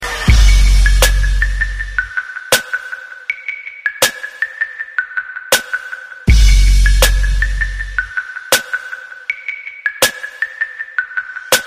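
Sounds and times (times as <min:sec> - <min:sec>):
hip hop bass ringtone: 0:00.0 - 0:11.6.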